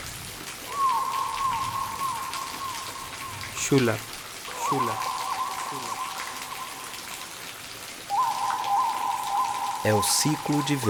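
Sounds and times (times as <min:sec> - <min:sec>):
steady rain with drop-like crackles: 0:00.0 - 0:10.8
sustained high whistling tone: 0:00.7 - 0:03.7, 0:04.5 - 0:07.3, 0:08.1 - 0:10.8
speech: 0:03.7 - 0:04.1, 0:04.7 - 0:05.1, 0:05.7 - 0:06.0, 0:09.8 - 0:10.8.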